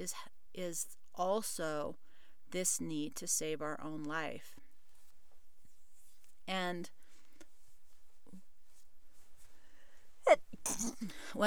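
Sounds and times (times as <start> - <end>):
speech: 0.0 - 4.6, 6.5 - 7.0, 10.2 - 11.4
person sneezing: 10.3 - 11.4.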